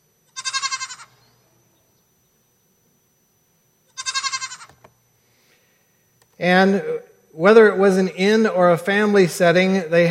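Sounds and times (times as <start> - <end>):
faint low hum: 0.0 - 10.0
goats bleating: 0.3 - 1.2, 4.0 - 4.7
speech: 6.4 - 10.0.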